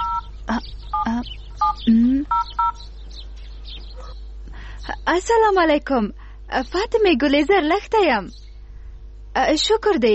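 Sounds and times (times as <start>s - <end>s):
telephone keypad two-tone dialing beeps: 0.0s - 0.3s, 0.9s - 2.8s
low steady hum: 0.0s - 10.1s
speech: 0.6s - 2.7s, 5.0s - 8.4s, 9.4s - 10.1s.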